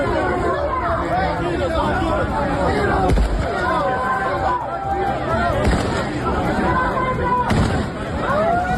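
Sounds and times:
large crowd shouting and chattering at city port: 0:00.0 - 0:08.7
gunshots fired into the air: 0:05.6 - 0:06.1, 0:07.5 - 0:08.0.

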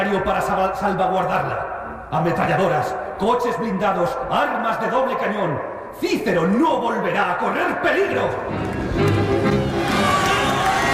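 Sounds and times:
speech: 0:00.0 - 0:09.5
frightened crowd bursting into applause: 0:08.5 - 0:10.9.

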